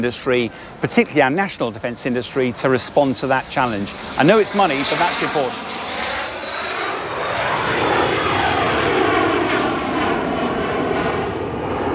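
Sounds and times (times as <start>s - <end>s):
speech: 0.0s - 6.0s
jet aircraft engine roar taking off from airfield: 0.2s - 11.9s.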